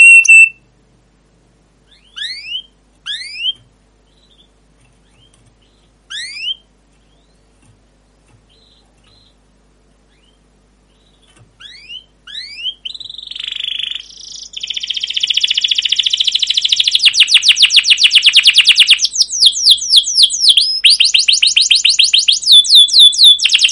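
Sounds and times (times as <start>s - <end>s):
canary song: 0.0s - 0.8s, 1.6s - 23.7s.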